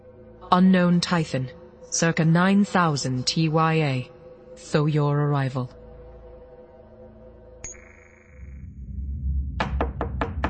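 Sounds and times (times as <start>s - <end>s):
speech: 0.5s - 5.8s
firm knocks on a door: 9.6s - 10.4s.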